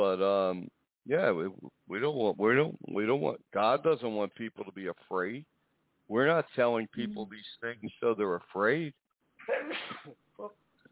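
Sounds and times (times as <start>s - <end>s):
speech: 0.0s - 5.5s, 6.1s - 10.6s
person sneezing: 9.4s - 10.2s.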